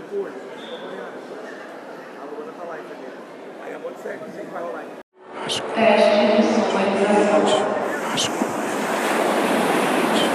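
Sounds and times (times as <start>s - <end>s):
speech: 0.2s - 0.6s, 4.0s - 6.4s, 7.0s - 8.5s
wind blowing across the microphone: 6.4s - 10.3s.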